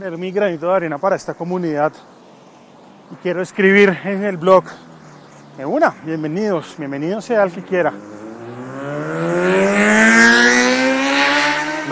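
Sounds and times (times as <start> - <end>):
speech: 0.0 - 2.2, 3.1 - 4.9, 5.6 - 8.2
motorcycle roaring past: 4.6 - 11.8.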